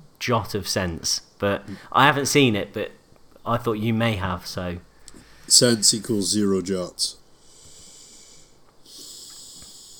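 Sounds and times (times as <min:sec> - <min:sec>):
speech: 0:00.2 - 0:04.9, 0:05.5 - 0:07.2
heavy nose breathing into microphone: 0:07.4 - 0:09.9.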